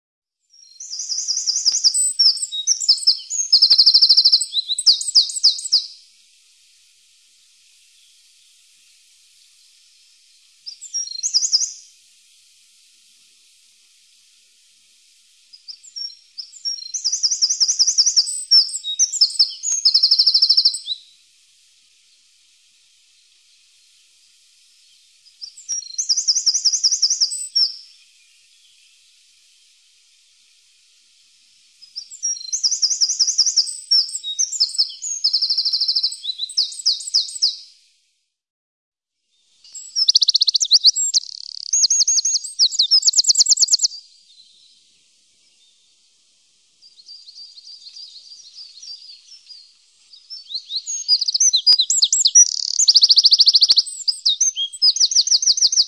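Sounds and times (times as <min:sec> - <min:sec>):
Eurasian wren singing: 0:00.5 - 0:06.0, 0:10.6 - 0:11.9, 0:15.5 - 0:21.1, 0:25.2 - 0:29.0, 0:31.8 - 0:37.6, 0:39.7 - 0:44.7, 0:46.8 - 0:55.8.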